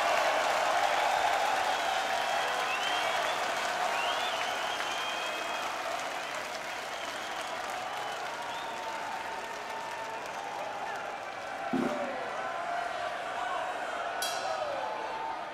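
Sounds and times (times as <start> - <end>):
large audience clapping and cheering at an open-air metal festival in the United Kingdom: 0.0 - 15.5
high whistles from a festival crowd: 2.6 - 5.6.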